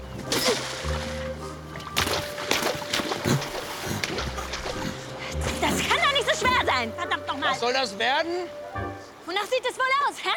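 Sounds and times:
stream water sloshing and trickling: 0:00.0 - 0:10.3
long stick slapping stream water to catch a fish: 0:00.1 - 0:06.0
speech: 0:06.8 - 0:08.7, 0:09.3 - 0:10.3.

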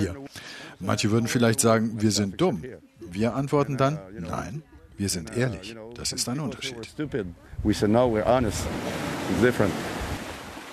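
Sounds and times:
speech: 0:00.8 - 0:09.9
waves washing onto a beach below red sandstone cliffs on the Îles de la Madeleine: 0:08.4 - 0:10.7.

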